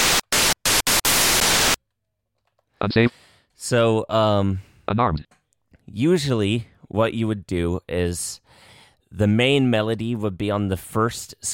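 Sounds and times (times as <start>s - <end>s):
harsh 8-bit NES noise-channel synth bursts on a virtual MIDI keyboard: 0.0s - 1.8s
speech: 2.8s - 11.5s.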